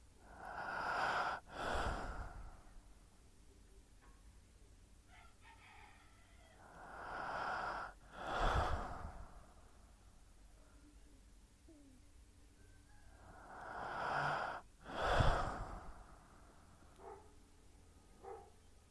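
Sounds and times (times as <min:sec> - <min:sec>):
slow deep breathing, inhaling and exhaling: 0:00.0 - 0:03.0, 0:06.5 - 0:10.2, 0:12.9 - 0:17.3.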